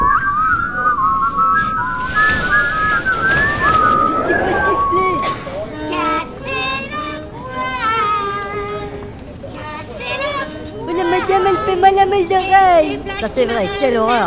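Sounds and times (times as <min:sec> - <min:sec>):
people whistling a wandering tune in a metro: 0:00.0 - 0:06.9
murmur of noise: 0:00.0 - 0:14.2
speech: 0:13.2 - 0:14.2.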